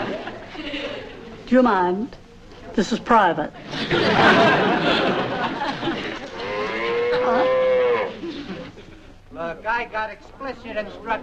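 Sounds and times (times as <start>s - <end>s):
laughter: 0.0s - 1.3s, 3.6s - 9.3s
speech: 1.5s - 2.2s, 2.8s - 5.2s, 9.6s - 11.2s
cow mooing: 6.4s - 8.2s.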